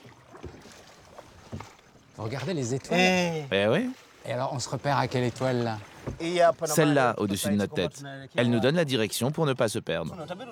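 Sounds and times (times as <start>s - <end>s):
oars rowing a boat without a motor: 0.0s - 7.6s
steady wash of wind and water noise: 0.0s - 10.5s
speech: 2.2s - 10.5s.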